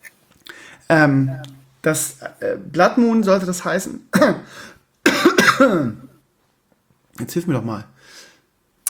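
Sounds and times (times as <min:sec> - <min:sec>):
speech: 0:00.9 - 0:04.8, 0:05.6 - 0:06.1, 0:07.2 - 0:08.2
cough and raspy throat clearing from a person with a frog in the throat: 0:05.0 - 0:06.1.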